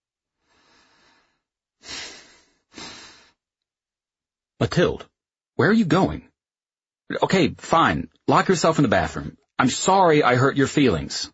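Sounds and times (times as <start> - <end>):
heavy agitated breathing: 0.5 - 3.4
speech: 4.6 - 6.3, 7.1 - 11.3.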